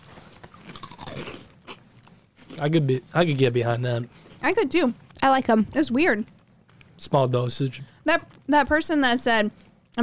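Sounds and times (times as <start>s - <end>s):
crunching rolled tortilla chips being chewed: 0.0s - 1.8s
speech: 2.6s - 6.4s, 7.0s - 10.0s.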